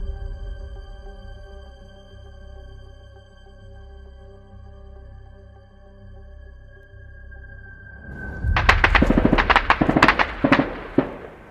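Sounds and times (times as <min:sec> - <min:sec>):
gunfire volley: 0:08.3 - 0:11.4.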